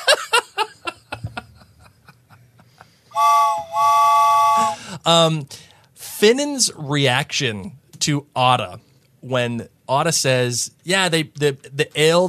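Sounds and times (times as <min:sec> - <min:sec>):
laughter: 0:00.0 - 0:03.0
steam train whistle: 0:03.2 - 0:04.8
speech: 0:05.0 - 0:12.2.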